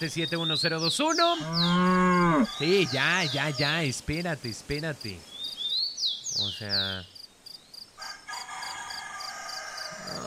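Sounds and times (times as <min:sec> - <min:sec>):
speech: 0:00.0 - 0:05.3, 0:06.4 - 0:07.2
rooster crowing: 0:01.5 - 0:03.7, 0:08.0 - 0:10.2.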